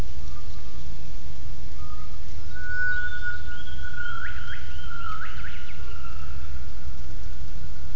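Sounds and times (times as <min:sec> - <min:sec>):
low background rumble: 0:00.0 - 0:07.9
gibbon whistled calls: 0:01.8 - 0:06.6.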